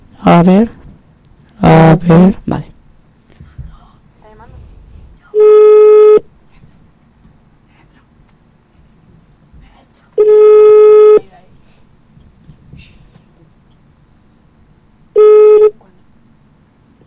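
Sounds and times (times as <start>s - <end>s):
speech: 0.3s - 0.8s, 1.6s - 2.7s
telephone busy signal: 5.4s - 6.2s, 10.2s - 11.2s, 15.2s - 15.8s.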